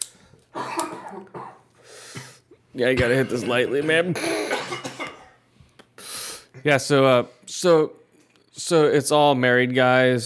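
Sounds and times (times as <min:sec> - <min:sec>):
harsh raspy coughing fit: 0:00.6 - 0:05.4
person gasping between coughs: 0:01.8 - 0:02.4, 0:04.2 - 0:04.6, 0:06.0 - 0:06.6
speech: 0:02.8 - 0:04.4, 0:06.6 - 0:08.0, 0:08.6 - 0:10.2.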